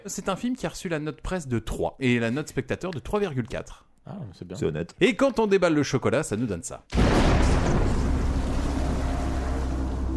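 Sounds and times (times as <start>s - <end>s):
speech: 0.0s - 7.8s
loud explosion with deep sustained rumble: 6.9s - 10.1s.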